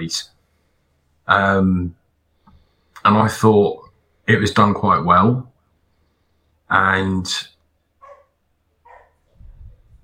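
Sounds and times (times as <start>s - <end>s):
speech: 0.0s - 0.3s, 1.3s - 2.0s, 3.0s - 5.5s, 6.7s - 7.5s
dog barking: 8.0s - 9.2s.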